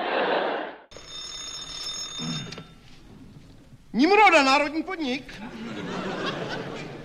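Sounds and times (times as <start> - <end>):
laughter: 0.0 - 0.8, 5.3 - 7.0
old-style telephone bell ringing: 0.9 - 3.0
speech: 4.0 - 5.7.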